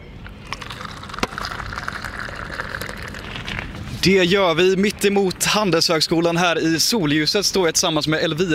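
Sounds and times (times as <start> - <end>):
busy outdoor noise: 0.0 - 8.5
coffee pouring into cups outdoors: 0.4 - 3.8
speech: 4.0 - 8.5.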